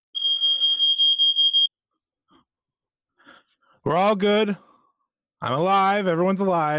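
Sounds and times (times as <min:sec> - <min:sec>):
smoke alarm beeping: 0:00.1 - 0:01.8
speech: 0:03.8 - 0:04.7, 0:05.4 - 0:06.7.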